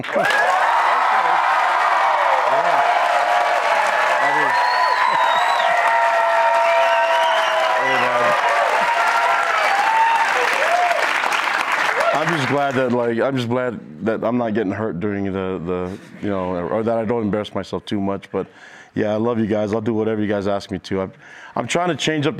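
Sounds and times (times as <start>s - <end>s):
speech: 0.0s - 0.6s, 12.2s - 22.3s
large crowd clapping: 0.0s - 13.1s.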